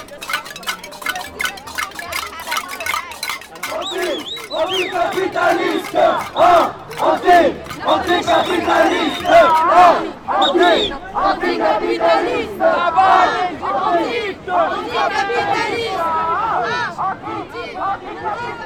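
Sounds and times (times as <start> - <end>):
protest group from Quebec banging on metal pots at a demonstration: 0.0 - 9.8
protesters shouting and chanting at a demonstration: 0.0 - 18.6.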